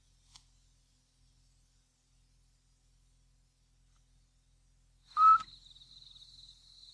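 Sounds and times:
scops owl mother calling to chicks in nest: 5.2s - 5.5s
thin steady high-pitched tone: 5.2s - 5.5s.

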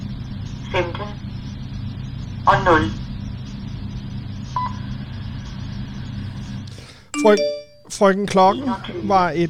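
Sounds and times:
telephone line hum and noise: 0.0s - 9.4s
speech: 2.5s - 3.0s, 7.2s - 9.4s
Danish automatic telephone time signal beep: 7.2s - 7.9s.

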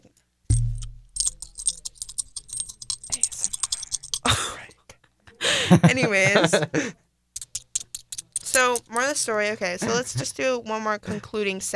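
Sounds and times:
dollar coins jiggled together in a hand: 0.0s - 4.4s, 7.4s - 9.3s
speech: 5.7s - 7.0s, 8.6s - 11.7s.

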